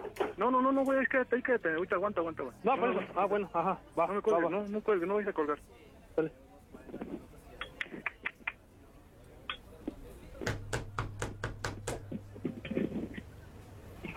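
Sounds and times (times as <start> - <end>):
speech: 0.4 - 7.0
sharp knocks on a door: 10.4 - 12.2.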